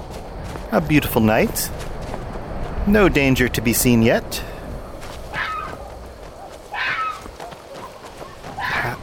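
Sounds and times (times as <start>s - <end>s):
speech: 0.7s - 1.9s, 2.9s - 4.5s
fox howling: 4.8s - 9.0s.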